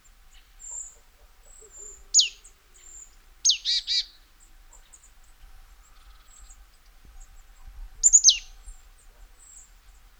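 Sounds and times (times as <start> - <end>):
Marsh tit call: 0.3 - 4.2, 8.0 - 8.5.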